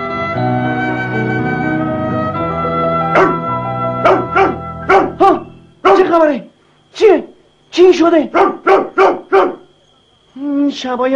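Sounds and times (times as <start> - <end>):
music: 0.0 - 5.8
dog barking: 3.1 - 3.4, 4.0 - 6.1, 8.3 - 9.8
speech: 8.0 - 8.8, 10.7 - 11.1.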